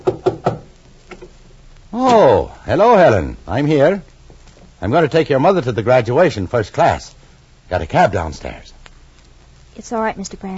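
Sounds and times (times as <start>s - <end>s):
knocking on a wooden door: 0.0s - 0.7s
speech: 1.9s - 4.1s, 4.8s - 8.7s, 9.8s - 10.5s.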